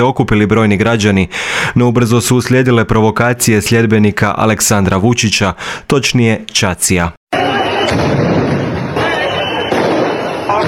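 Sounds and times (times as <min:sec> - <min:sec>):
speech: 0:00.0 - 0:07.2
loud cannon-like blasts at a street protest outside a parliament building: 0:07.8 - 0:10.6.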